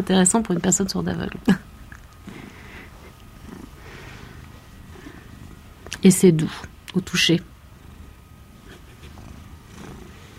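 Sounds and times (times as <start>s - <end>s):
speech: 0.0s - 1.7s, 6.0s - 7.5s
purr box toy making cat purring sound: 2.2s - 6.1s, 7.1s - 10.3s.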